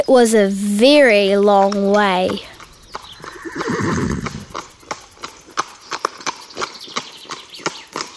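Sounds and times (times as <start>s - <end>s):
speech: 0.0s - 2.5s, 3.6s - 4.4s
horse hooves clip-clopping on a hard surface: 0.8s - 8.1s
horse whinnying: 2.9s - 4.7s.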